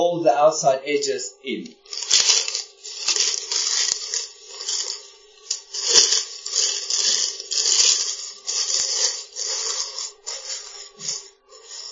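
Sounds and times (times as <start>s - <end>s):
speech: 0.0s - 2.0s
paper cartouche crinkling pressed onto frying vegetables: 1.8s - 11.9s
vegetables frying in a pan: 1.9s - 11.2s.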